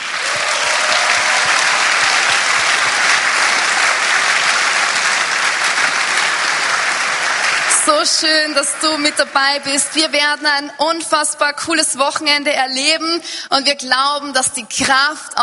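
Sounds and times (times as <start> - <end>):
large crowd applauding: 0.0 - 10.7
speech: 7.9 - 15.4.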